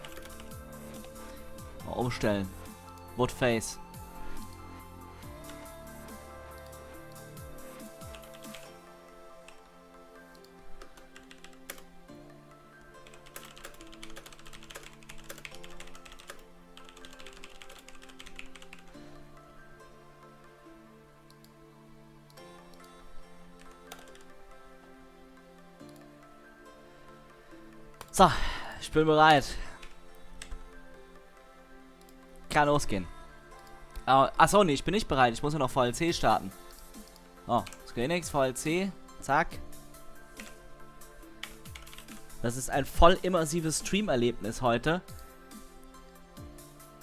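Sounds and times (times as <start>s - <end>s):
typing on a computer keyboard with an English layout: 0.0s - 11.9s, 12.8s - 19.2s, 22.4s - 24.6s, 29.6s - 31.0s, 32.0s - 44.0s
music: 0.0s - 47.0s
speech: 1.9s - 2.6s, 3.2s - 3.8s, 28.2s - 29.6s, 32.6s - 33.1s, 34.1s - 36.6s, 37.5s - 39.7s, 42.4s - 45.2s.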